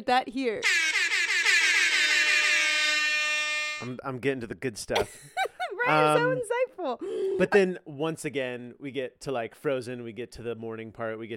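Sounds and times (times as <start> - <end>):
speech: 0.0 - 0.8, 3.8 - 11.3
air horn on a little buzzer device blaring: 0.6 - 4.0
laughter: 4.9 - 6.4.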